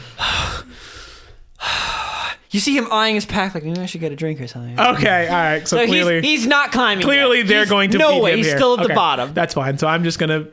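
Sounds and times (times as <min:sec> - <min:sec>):
person imitating heavy panting breaths of a resting climber: 0:00.0 - 0:02.5
speech: 0:02.5 - 0:10.5.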